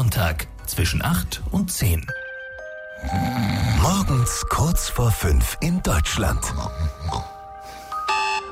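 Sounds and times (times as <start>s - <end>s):
speech: 0.1s - 2.2s, 3.0s - 7.3s
alarm clock ringing with electronic chirp and buzzy ring: 8.0s - 8.5s.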